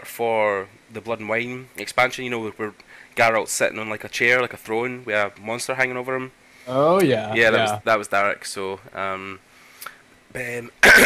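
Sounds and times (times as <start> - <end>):
speech: 0.2 - 9.5, 10.3 - 11.0
brief voiced sound: 6.7 - 7.8
person clearing throat: 10.8 - 11.0.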